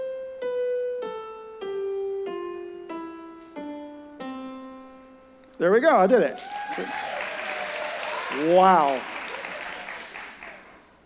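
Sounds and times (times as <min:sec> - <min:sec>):
speech: 0:05.6 - 0:07.1, 0:08.3 - 0:09.1
audience applause: 0:06.3 - 0:11.0.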